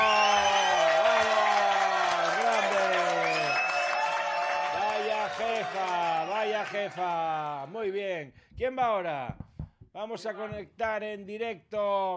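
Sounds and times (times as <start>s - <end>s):
crowd applause and cheering: 0.0s - 7.7s
speech: 6.8s - 9.4s, 10.0s - 12.1s.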